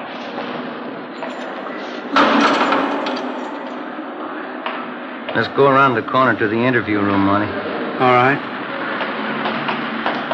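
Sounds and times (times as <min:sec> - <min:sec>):
steady hum: 0:00.0 - 0:10.3
heavy door slamming shut with metallic clatter: 0:02.1 - 0:04.0
speech: 0:05.4 - 0:08.5.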